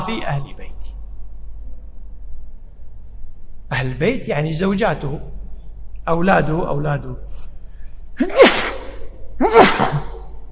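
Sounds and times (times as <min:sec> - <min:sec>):
speech: 0:00.0 - 0:01.0, 0:03.7 - 0:05.4, 0:06.0 - 0:07.5, 0:08.2 - 0:08.6
person sneezing: 0:08.2 - 0:10.4.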